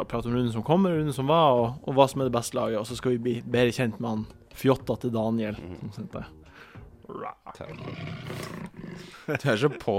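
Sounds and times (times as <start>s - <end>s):
speech: 0.0s - 6.4s, 7.1s - 9.9s
tiger roaring: 7.6s - 9.2s.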